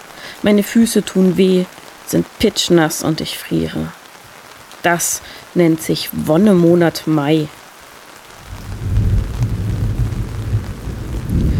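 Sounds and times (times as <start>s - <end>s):
continuous rain: 0.0s - 11.5s
speech: 0.4s - 4.0s, 4.8s - 7.6s
distant low thunder rumbling: 8.3s - 11.5s.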